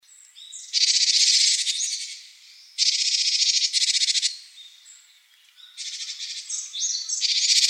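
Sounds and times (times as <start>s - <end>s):
Great tit repeating loud rasping churr calls: 0.6s - 4.5s, 5.6s - 7.6s.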